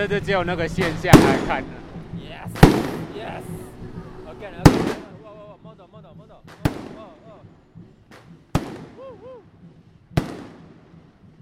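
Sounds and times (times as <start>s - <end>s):
speech: 0.0s - 5.0s
murmur: 0.0s - 10.3s
fireworks bursting outdoors: 0.7s - 3.8s, 4.5s - 5.4s, 6.4s - 11.4s.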